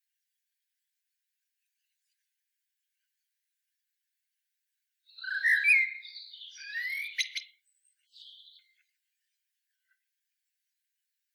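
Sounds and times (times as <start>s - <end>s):
common blackbird Turdus merula singing: 5.1s - 8.7s.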